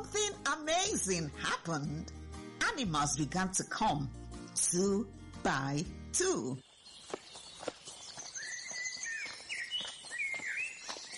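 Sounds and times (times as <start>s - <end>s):
speech: 0.9s - 2.2s, 2.8s - 6.7s
birds chirping and twittering: 6.2s - 11.1s.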